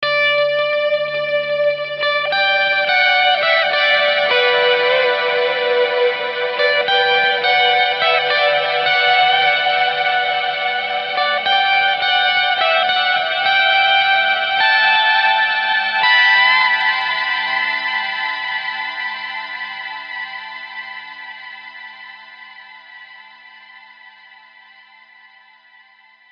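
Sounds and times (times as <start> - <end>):
lead guitar outro: 0.0 - 25.2.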